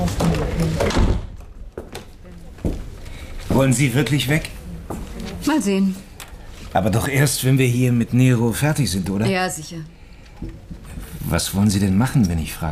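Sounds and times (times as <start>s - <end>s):
door opening and shutting with clunks and rattles: 0.1s - 1.5s
speech: 3.6s - 4.5s, 5.5s - 6.1s, 6.7s - 10.6s, 11.3s - 12.6s.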